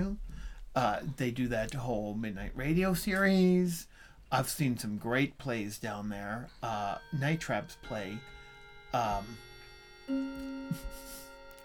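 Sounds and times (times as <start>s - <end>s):
speech: 0.8s - 9.5s, 10.1s - 11.2s
grandfather clock chiming: 5.8s - 11.6s.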